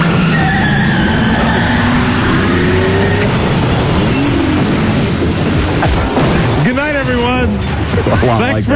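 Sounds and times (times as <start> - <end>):
car engine revving then sputtering and stalling: 0.0 - 8.7.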